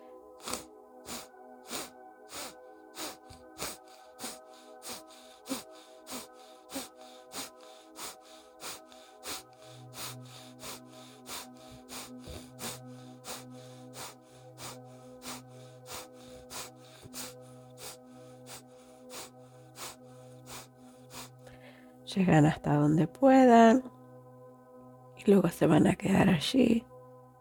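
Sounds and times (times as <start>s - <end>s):
soft sustained musical drone: 0.0s - 27.3s
rapid forceful abdominal exhalations through the nose: 0.4s - 21.7s
speech: 22.1s - 24.0s, 25.2s - 26.9s.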